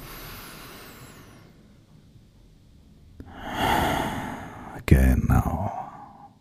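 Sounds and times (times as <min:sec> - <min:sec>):
deep breath in and out during a guided breathing exercise: 0:00.0 - 0:01.8, 0:03.2 - 0:04.8, 0:05.6 - 0:06.3.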